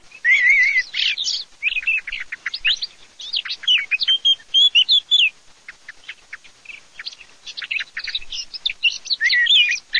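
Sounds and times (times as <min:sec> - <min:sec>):
blackcap singing: 0:00.0 - 0:09.9.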